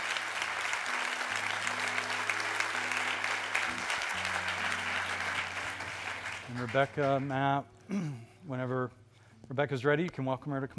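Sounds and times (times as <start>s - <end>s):
room full of people applauding: 0.0s - 7.6s
low musical drone: 0.8s - 8.0s
speech: 6.5s - 10.7s.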